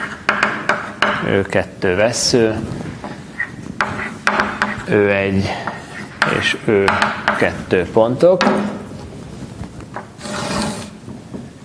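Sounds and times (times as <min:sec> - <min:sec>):
pencil scratching on paper drawing a thick line: 0:00.0 - 0:01.0, 0:03.4 - 0:05.0, 0:10.2 - 0:10.9
speech: 0:01.2 - 0:02.9, 0:04.9 - 0:05.7, 0:06.3 - 0:08.7.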